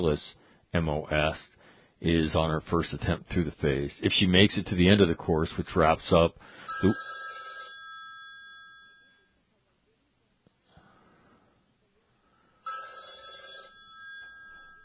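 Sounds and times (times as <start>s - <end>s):
speech: 0.0s - 7.1s
telephone ringing with an electronic trill: 6.6s - 9.4s, 12.6s - 14.8s.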